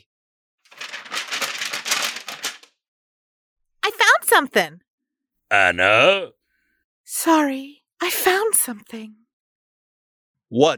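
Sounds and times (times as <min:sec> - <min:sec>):
papers rustling and crinkling: 0:00.7 - 0:02.7
speech: 0:04.3 - 0:04.9, 0:05.5 - 0:06.4, 0:07.1 - 0:09.2, 0:10.5 - 0:10.7.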